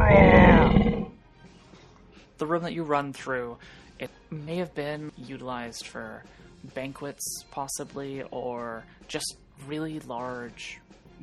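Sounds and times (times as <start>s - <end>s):
person imitating a big cat roar: 0.0s - 1.1s
speech: 2.4s - 11.2s.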